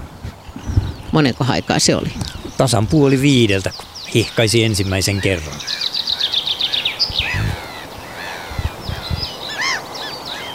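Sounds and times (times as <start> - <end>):
low thumps: 0.0 - 4.4, 7.1 - 7.7
soft outdoor noise: 0.0 - 10.5
chaffinch singing: 0.4 - 10.5
speech: 1.1 - 5.9.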